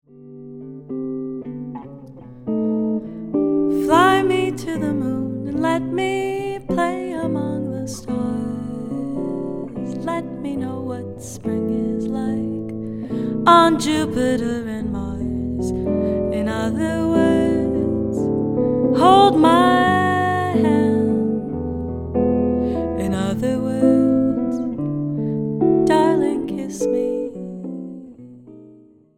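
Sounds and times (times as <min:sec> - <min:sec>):
guitar: 0:00.0 - 0:29.1
singing voice: 0:03.7 - 0:21.7, 0:22.8 - 0:24.9, 0:25.8 - 0:28.2.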